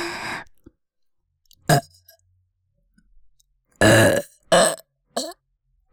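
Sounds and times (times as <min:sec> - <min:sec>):
person burping: 0:01.7 - 0:01.9, 0:03.8 - 0:05.4.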